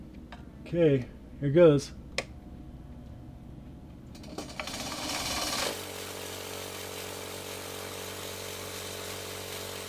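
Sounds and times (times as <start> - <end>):
speech: 0.7 - 2.0
lab blender grinding mosquito samples: 4.2 - 9.8.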